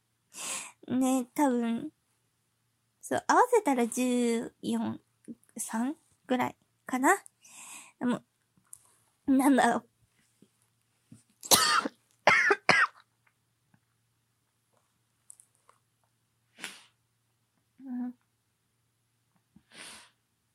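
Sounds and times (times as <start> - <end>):
speech: 0.9 - 2.0, 3.1 - 7.3, 8.0 - 8.3, 9.3 - 9.9
person recovering from illness coughing: 11.5 - 13.0.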